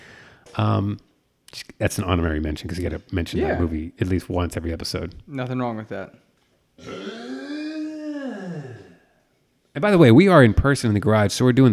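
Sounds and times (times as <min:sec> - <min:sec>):
speech: 0:00.6 - 0:07.2, 0:09.8 - 0:11.7
long rumbling burp: 0:06.8 - 0:09.0.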